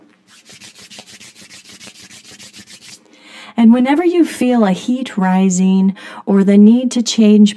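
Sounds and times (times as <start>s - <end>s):
hands rubbing briskly together during a seated breathing exercise: 0.0s - 3.1s
speech: 3.6s - 7.5s.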